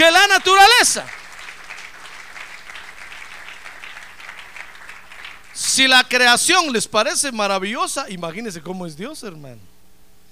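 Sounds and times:
crowd applauding: 0:00.0 - 0:06.3
speech: 0:00.5 - 0:01.2, 0:05.8 - 0:09.7.

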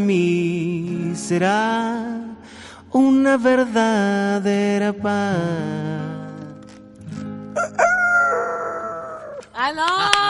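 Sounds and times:
speech: 0:00.0 - 0:06.1, 0:09.6 - 0:10.2
person imitating rooster crow: 0:07.6 - 0:09.4.

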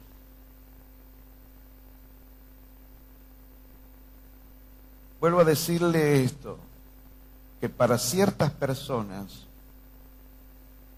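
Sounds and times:
electric fans running: 0:00.0 - 0:10.9
speech: 0:05.2 - 0:06.7, 0:07.6 - 0:09.5.

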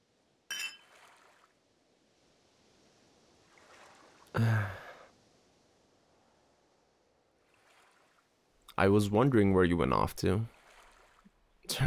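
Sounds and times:
soft hiss: 0:00.0 - 0:11.8
two beer glasses clinking in a toast: 0:00.5 - 0:01.0
speech: 0:04.4 - 0:04.8, 0:08.8 - 0:10.6, 0:11.7 - 0:11.8.

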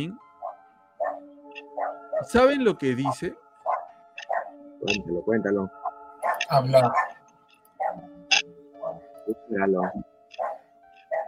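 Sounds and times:
speech: 0:00.0 - 0:00.2, 0:02.2 - 0:03.4, 0:04.8 - 0:05.8, 0:06.5 - 0:07.1, 0:09.3 - 0:10.1
dog barking: 0:00.4 - 0:02.3, 0:03.6 - 0:04.6, 0:05.8 - 0:07.2, 0:07.8 - 0:08.1, 0:08.8 - 0:09.0, 0:09.8 - 0:11.2.

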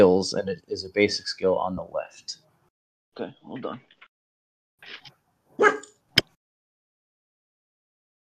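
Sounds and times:
speech: 0:00.0 - 0:02.4, 0:03.2 - 0:03.9, 0:04.8 - 0:05.8
person mimicking a dog with woof-like barks: 0:05.6 - 0:05.9.

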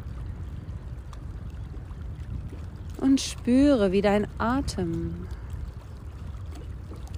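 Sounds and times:
gently splashing, babbling water: 0:01.7 - 0:07.1
speech: 0:03.0 - 0:05.4.

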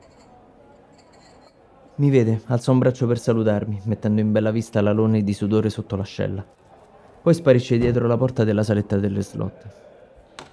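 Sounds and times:
glasses clinking while being rinsed: 0:00.0 - 0:01.8
murmur of voices: 0:00.0 - 0:10.5
speech: 0:02.0 - 0:06.6, 0:07.2 - 0:09.9.

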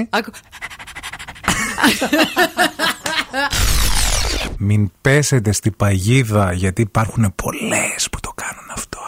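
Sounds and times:
speech: 0:00.0 - 0:00.6, 0:01.8 - 0:03.8, 0:04.6 - 0:08.2
person imitating a dog's panting with quick breathy huffs: 0:00.2 - 0:01.8
laughter: 0:01.5 - 0:03.6.

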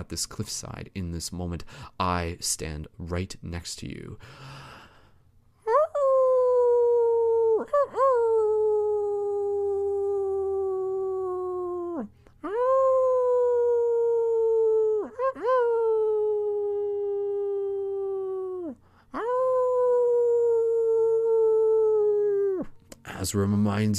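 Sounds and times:
speech: 0:00.0 - 0:04.7, 0:23.3 - 0:23.9
faint low hum: 0:00.0 - 0:23.9
voices imitating wolf howls at a cliffside during a blood wolf moon: 0:05.9 - 0:22.7.

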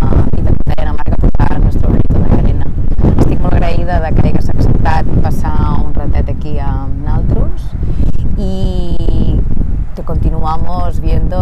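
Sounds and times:
person talking: 0:00.0 - 0:09.4, 0:10.0 - 0:11.3
wind buffeting the microphone: 0:00.0 - 0:11.3.

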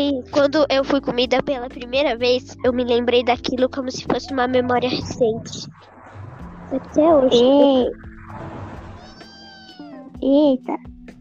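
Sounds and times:
speech: 0:00.0 - 0:05.9, 0:06.7 - 0:08.1, 0:10.2 - 0:10.9
cat meowing: 0:09.0 - 0:10.2.

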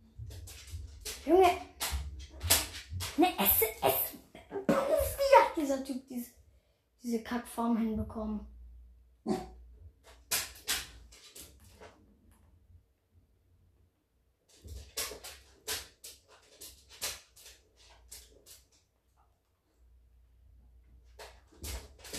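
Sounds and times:
faint noise: 0:00.0 - 0:22.1
speech: 0:01.2 - 0:01.7, 0:07.1 - 0:08.6, 0:09.2 - 0:09.4
dog barking excitedly: 0:09.2 - 0:09.6.

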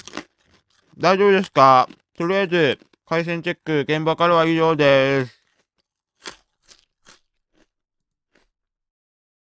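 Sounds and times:
person crunching a Japanese rice cracker: 0:00.0 - 0:03.2, 0:04.4 - 0:08.5
speech: 0:01.0 - 0:05.4.

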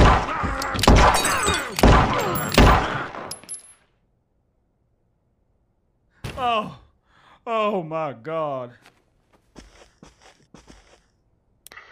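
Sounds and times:
gunshots in an adult animated cartoon: 0:00.0 - 0:03.3
speech: 0:07.4 - 0:09.0.

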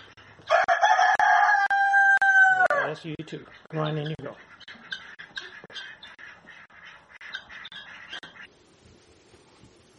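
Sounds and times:
rooster crowing: 0:00.5 - 0:03.0
speech: 0:02.9 - 0:04.7.

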